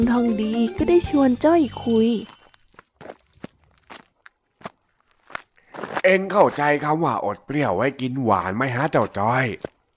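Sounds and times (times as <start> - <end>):
speech: 0.0 - 2.4, 6.0 - 9.8
footsteps of two people walking on gravel or dry ground: 1.9 - 6.8, 8.9 - 9.9.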